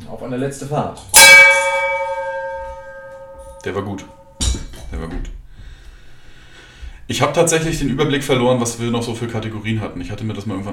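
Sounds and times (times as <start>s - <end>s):
speech: 0.1s - 1.5s, 3.6s - 5.4s, 7.1s - 10.7s
bell ringing: 1.2s - 4.4s.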